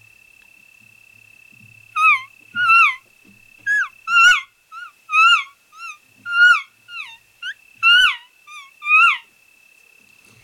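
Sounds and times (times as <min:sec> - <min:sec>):
imitated elk calf call with high squealing mews: 0:02.0 - 0:03.0, 0:03.7 - 0:09.3.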